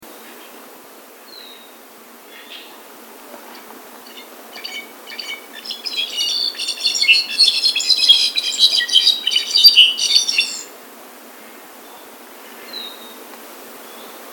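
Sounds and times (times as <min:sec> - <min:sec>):
Brown Back Solitaire: 0:03.4 - 0:10.7.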